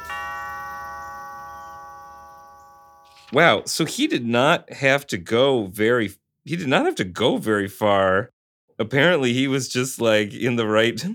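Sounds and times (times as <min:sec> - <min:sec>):
doorbell of an old house in Los Angeles ringing: 0:00.0 - 0:03.3
speech: 0:03.3 - 0:11.1.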